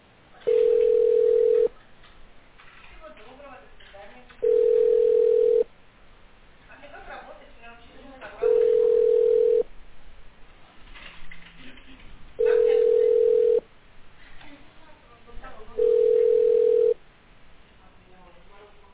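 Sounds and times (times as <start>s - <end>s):
telephone ringback tone on an unanswered call: 0.4s - 1.7s, 4.4s - 5.7s, 8.4s - 9.7s, 12.4s - 13.6s, 15.8s - 17.0s.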